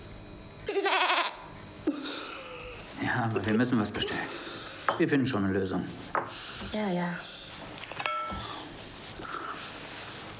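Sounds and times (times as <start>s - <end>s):
goats bleating: 0.7s - 1.5s
speech: 3.2s - 4.4s, 5.0s - 7.3s.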